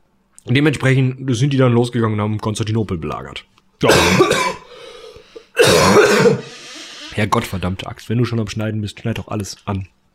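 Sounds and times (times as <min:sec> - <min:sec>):
speech: 0:00.4 - 0:04.6, 0:07.2 - 0:10.0
rough coughs or throat-clearing bursts: 0:03.8 - 0:04.7, 0:05.5 - 0:06.7.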